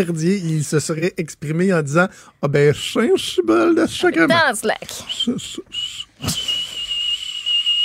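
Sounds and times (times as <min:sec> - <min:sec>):
speech: 0:00.0 - 0:06.6
piercing high-pitched whistle: 0:05.1 - 0:07.8.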